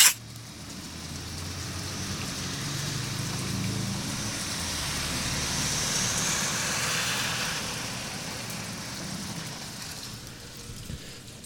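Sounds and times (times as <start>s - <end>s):
steady rain pouring: 0.2s - 11.4s
water rushing and trickling: 0.2s - 11.4s.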